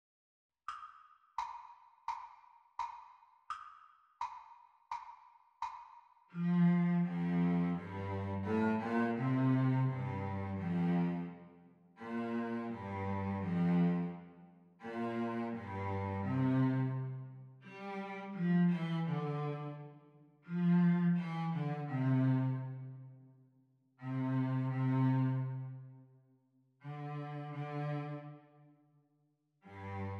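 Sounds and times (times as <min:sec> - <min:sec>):
cello playing the teacher part of a duet: 0:06.4 - 0:11.4, 0:12.0 - 0:19.9, 0:20.5 - 0:22.9, 0:24.0 - 0:25.7, 0:26.8 - 0:28.3, 0:29.7 - 0:30.1.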